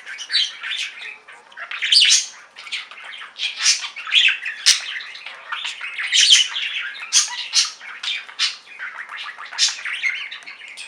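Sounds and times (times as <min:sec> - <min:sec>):
budgerigar squawky chirps and warbled notes: 0:00.0 - 0:10.8.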